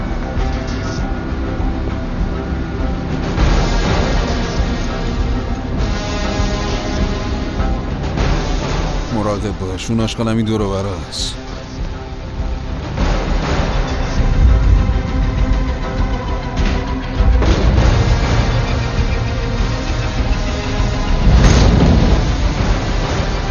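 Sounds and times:
constant low noisy rumble: 0.0 - 23.4
speech: 9.3 - 11.4
deep rumbling explosion blasts: 21.2 - 23.4.

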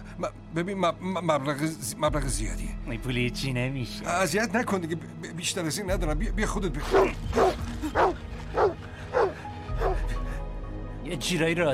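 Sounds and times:
speech: 0.2 - 8.0, 11.1 - 11.7
dog barking: 6.9 - 10.0.

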